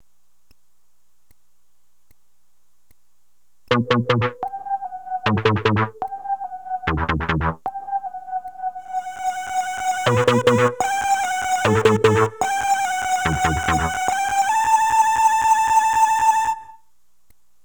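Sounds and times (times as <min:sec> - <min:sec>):
intro synth pad: 0:03.7 - 0:16.8.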